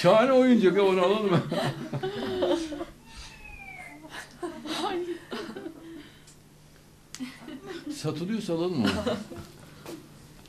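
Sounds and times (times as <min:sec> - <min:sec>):
speech: 0:00.0 - 0:02.8, 0:08.0 - 0:10.0
laughter: 0:01.2 - 0:03.0, 0:03.8 - 0:06.0, 0:07.2 - 0:08.0, 0:08.7 - 0:09.6
cat meowing in short rising and falling cries: 0:03.1 - 0:04.0.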